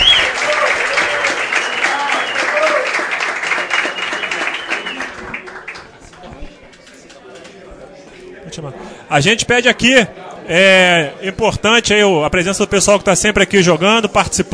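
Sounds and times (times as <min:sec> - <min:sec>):
crowd clapping in sustained applause: 0:00.0 - 0:07.6
speech: 0:08.6 - 0:14.5.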